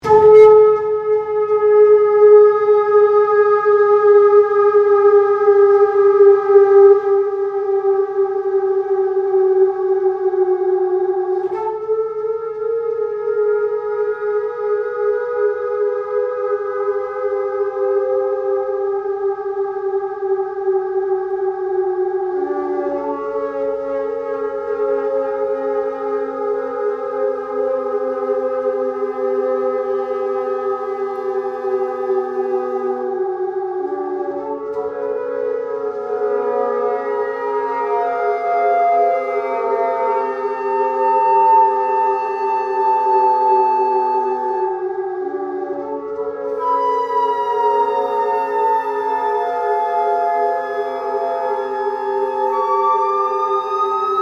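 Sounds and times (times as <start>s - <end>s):
noise flute: 0.0s - 54.2s.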